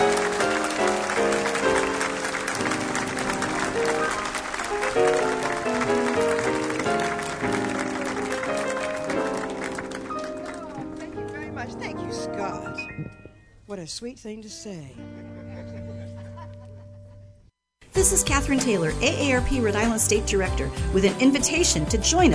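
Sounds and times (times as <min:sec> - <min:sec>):
crowd applause for arriving singer: 0:00.0 - 0:11.8
speech: 0:13.8 - 0:15.0, 0:18.0 - 0:22.3.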